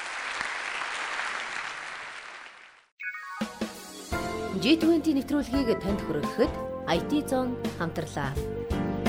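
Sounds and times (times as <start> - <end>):
audience applause at a talk: 0.0 - 2.9
speech: 4.6 - 8.9.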